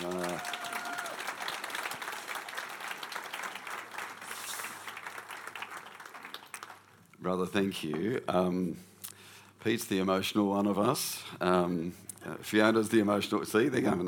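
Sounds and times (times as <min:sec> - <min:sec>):
room full of people applauding: 0:00.0 - 0:07.0
speech: 0:07.2 - 0:08.9, 0:09.6 - 0:14.0.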